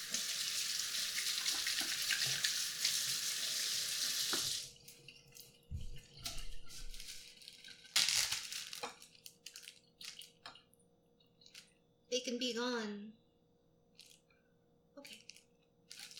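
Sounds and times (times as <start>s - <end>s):
running tap water while washing hands during pizza making: 0.0s - 7.9s
speech: 12.3s - 13.2s.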